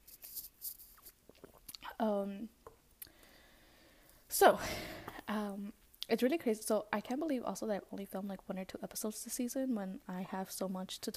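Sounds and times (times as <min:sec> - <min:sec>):
person sipping tea: 0:00.8 - 0:02.0
person slurping tea: 0:01.0 - 0:01.9
person hummed swallow: 0:01.2 - 0:02.0
speech: 0:02.0 - 0:02.6, 0:04.4 - 0:11.1.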